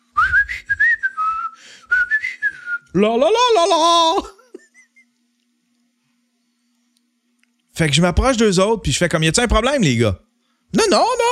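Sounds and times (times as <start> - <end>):
person whistling a short breezy carefree tune: 0.2 - 3.0
speech: 2.9 - 4.3, 7.8 - 11.2.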